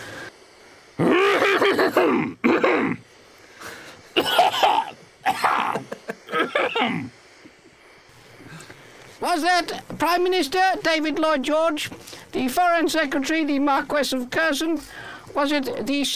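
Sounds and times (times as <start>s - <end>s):
person coughing: 1.1s - 3.0s, 4.2s - 7.1s
speech: 1.8s - 2.6s, 9.2s - 16.1s.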